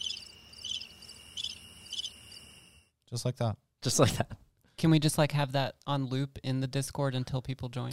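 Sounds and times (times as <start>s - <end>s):
crickets chirping at night: 0.0s - 2.9s
speech: 3.1s - 7.9s.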